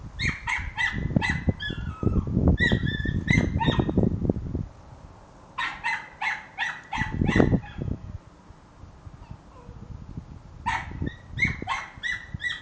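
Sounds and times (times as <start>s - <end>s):
dog giving short high whining yips: 0.2s - 4.0s, 5.6s - 7.9s, 9.2s - 9.8s, 10.7s - 12.6s.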